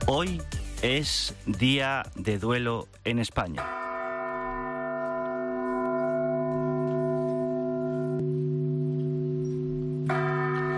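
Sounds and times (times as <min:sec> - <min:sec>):
speech: 0:00.1 - 0:03.8
church bells tolling: 0:03.6 - 0:10.7.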